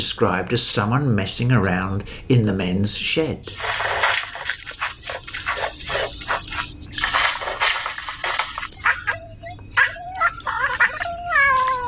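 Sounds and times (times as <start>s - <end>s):
speech: 0.0s - 4.0s
outdoor noise: 0.0s - 11.8s
bowerbird in a river red gum tree mimicking cat meows: 8.8s - 11.8s.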